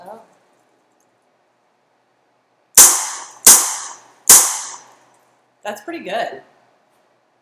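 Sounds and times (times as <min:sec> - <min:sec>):
Smith & Wesson handgun shots: 0:02.8 - 0:04.9
speech: 0:05.7 - 0:06.5.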